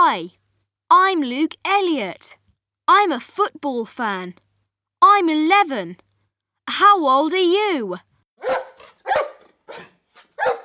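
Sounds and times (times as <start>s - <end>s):
speech: 0.1s - 4.4s, 5.0s - 6.0s, 6.7s - 10.6s
dog barking: 8.4s - 10.6s.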